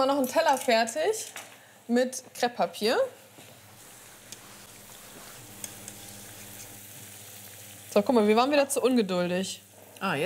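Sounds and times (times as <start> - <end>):
speech: 0.0 - 3.2, 8.0 - 10.2
food deep-frying in fat that is not yet fully hot: 3.6 - 10.2.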